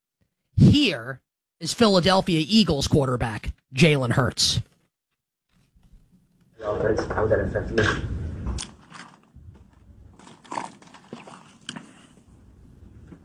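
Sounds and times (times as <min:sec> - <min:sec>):
speech: 0:00.6 - 0:04.7, 0:06.6 - 0:08.1
football quarterback slurping water: 0:08.6 - 0:13.0.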